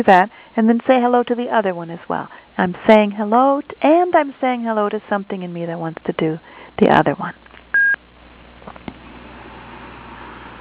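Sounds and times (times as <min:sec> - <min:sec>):
speech: 0:00.0 - 0:07.4
conference call join beep over a phone line: 0:07.7 - 0:08.0
low phone line hiss: 0:07.7 - 0:08.0.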